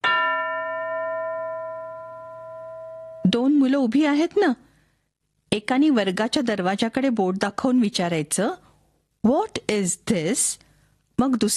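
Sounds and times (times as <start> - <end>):
school bell ding: 0.0 - 3.4
speech: 3.3 - 4.6, 5.5 - 8.6, 9.2 - 10.6, 11.2 - 11.5.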